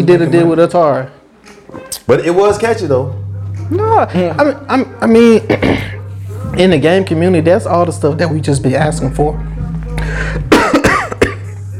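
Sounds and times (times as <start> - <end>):
speech: 0.0 - 1.2, 1.9 - 10.6
low hum: 2.6 - 11.7
person clearing throat after choking: 5.4 - 6.1, 10.4 - 11.6
person coughing after choking: 5.5 - 6.1, 10.3 - 11.6.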